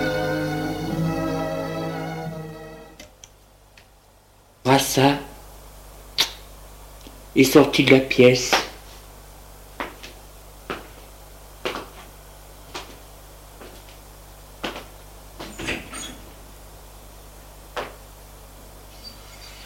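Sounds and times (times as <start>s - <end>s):
steady low hum: 0.0s - 19.6s
speech: 4.8s - 5.3s, 7.4s - 8.6s
door opening and closing: 15.4s - 16.3s.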